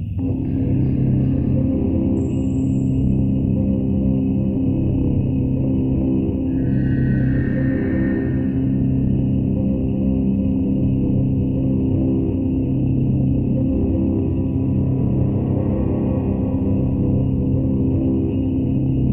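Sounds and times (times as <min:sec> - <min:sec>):
distorted noise: 0:00.2 - 0:19.1.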